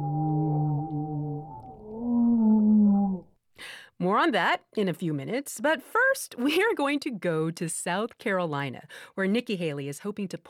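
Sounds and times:
humpback whale song: 0.0 - 3.4
speech: 3.6 - 10.4.

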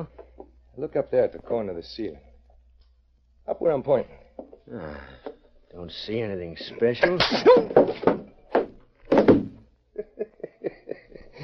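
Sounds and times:
speech: 0.0 - 0.2, 0.8 - 2.3, 3.5 - 8.3
heavy punches landing with dull thuds: 7.2 - 9.6
laughter: 10.0 - 11.4.

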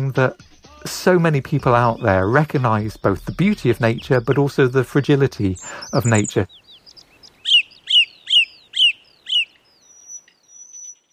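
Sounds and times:
bird singing bright descending chirps: 0.0 - 11.1
speech: 0.1 - 6.6
thin high bird whistles: 5.6 - 11.1.

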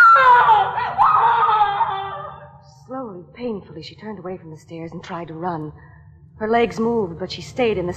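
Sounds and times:
woman screaming: 0.0 - 2.6
speech: 3.6 - 7.9.

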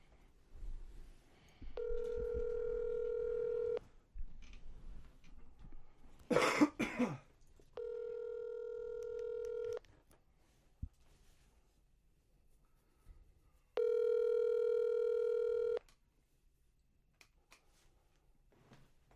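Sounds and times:
long steady electronic phone ring tones of an unanswered call: 1.8 - 3.8, 7.8 - 9.8, 13.8 - 15.8
person coughing: 6.3 - 7.3.

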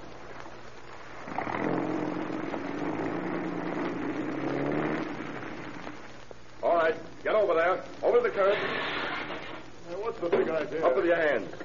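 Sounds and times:
car engine humming as the car pulls away: 0.0 - 6.3
speech: 7.4 - 9.0, 10.1 - 11.6.

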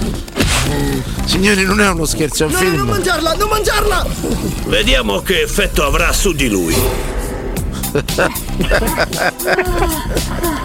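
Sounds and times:
busy movie-trailer soundtrack: 0.0 - 10.6
voices speaking and shouting: 1.2 - 10.1
speech: 1.3 - 7.1, 7.9 - 10.5
laughter: 2.0 - 6.6, 7.6 - 10.6
bear roaring in a film trailer: 2.4 - 9.1.

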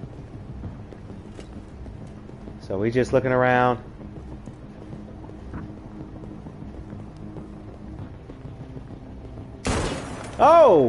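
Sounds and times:
low rumbling background in a video game: 0.0 - 10.8
speech: 2.7 - 4.0, 10.4 - 10.8
gunshot in a video game: 9.6 - 10.4.

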